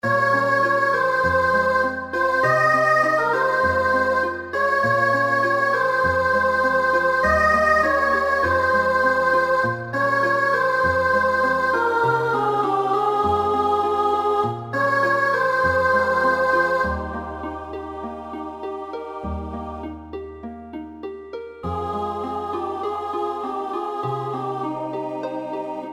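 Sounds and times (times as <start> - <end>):
soprano choir singing: 0.0 - 25.9.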